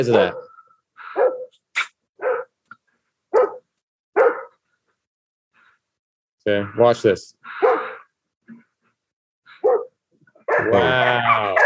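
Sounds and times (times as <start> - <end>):
speech: 0.0 - 0.4, 6.4 - 7.9, 10.6 - 11.6
large deep-voiced dog barking: 1.1 - 1.5, 2.2 - 2.6, 3.3 - 4.6, 7.6 - 8.0, 9.6 - 11.6.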